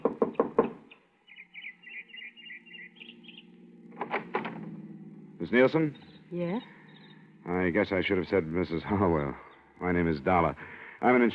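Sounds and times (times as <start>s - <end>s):
knocking on wooden door of a small house: 0.0s - 0.8s
faint birds chirping: 0.0s - 11.3s
speech: 5.4s - 6.8s, 7.4s - 11.3s.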